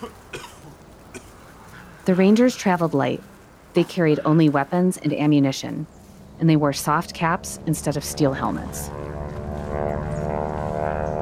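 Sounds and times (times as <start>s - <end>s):
speech: 0.0s - 0.3s, 2.1s - 9.0s
propeller fighter plane engine droning overhead: 5.6s - 11.2s.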